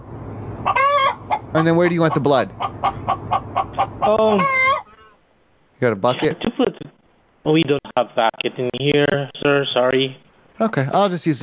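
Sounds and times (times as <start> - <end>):
chicken clucking: 0.7 - 5.1
speech: 1.5 - 3.2, 4.1 - 4.6, 5.8 - 6.6, 7.5 - 11.4.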